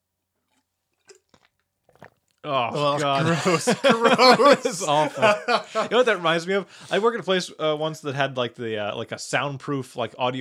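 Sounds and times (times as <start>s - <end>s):
exaggerated wet gulping of water: 0.5s - 3.0s
speech: 2.4s - 10.3s
laughter: 2.5s - 7.4s.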